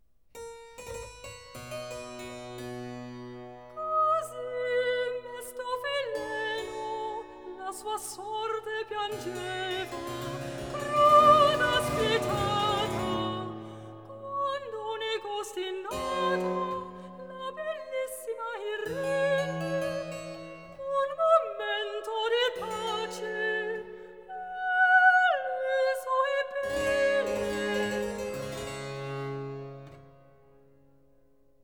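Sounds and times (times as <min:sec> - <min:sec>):
soprano singing recitative: 0:03.8 - 0:28.2.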